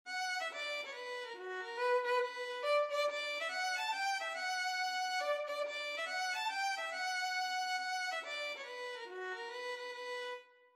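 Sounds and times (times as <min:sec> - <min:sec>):
violin: 0:00.0 - 0:10.7.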